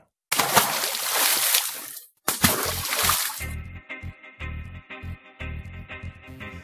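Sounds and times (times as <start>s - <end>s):
stone splashing into water: 0.3s - 3.5s.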